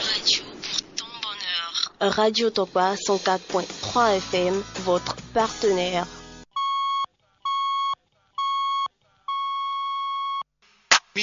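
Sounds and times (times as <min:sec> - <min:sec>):
speech: 0:02.0 - 0:06.2
radio station hourly time signal beeps: 0:06.6 - 0:10.4.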